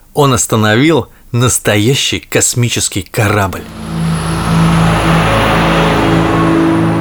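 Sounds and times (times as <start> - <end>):
speech: 0.2 - 3.9
dump truck engine revving and accelerating: 3.6 - 7.0.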